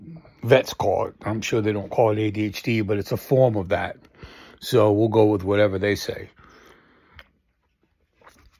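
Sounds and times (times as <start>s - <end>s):
speech: 0.5s - 6.4s
faint swallowing and mouth clicks: 6.3s - 8.5s
sipping coffee from a cup: 6.3s - 8.5s.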